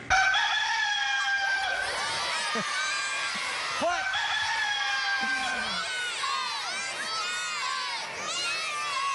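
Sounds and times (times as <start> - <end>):
rooster crowing cock-a-doodle-doo: 0.1 - 1.8, 3.8 - 5.5
laughter: 1.4 - 9.0.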